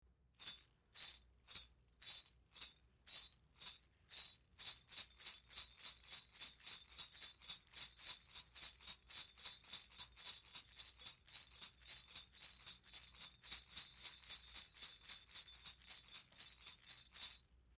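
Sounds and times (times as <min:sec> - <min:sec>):
pair of bells on velvet anklet jingling: 0:00.4 - 0:17.4.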